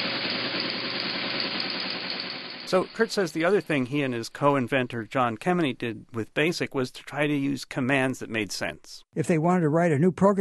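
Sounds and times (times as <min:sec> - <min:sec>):
teletype machine running with continuous mechanical clatter: 0:00.0 - 0:02.8
speech: 0:02.7 - 0:10.3.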